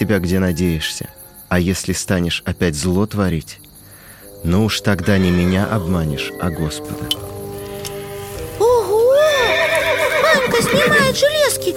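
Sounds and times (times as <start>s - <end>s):
speech: 0.0s - 3.7s, 4.4s - 7.2s, 10.7s - 11.7s
horse whinnying loudly: 7.0s - 11.2s.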